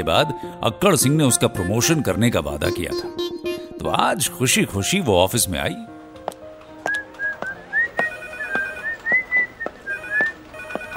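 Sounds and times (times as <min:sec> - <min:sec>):
speech: 0:00.0 - 0:05.9
person whistling a lilting melodic tune: 0:06.9 - 0:10.4.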